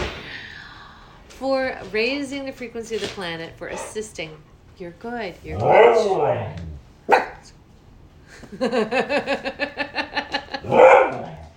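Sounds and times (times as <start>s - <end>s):
speech: 1.4s - 6.7s, 8.4s - 9.8s
dog yelping: 5.5s - 7.5s, 10.6s - 11.4s
laughter: 8.3s - 10.8s.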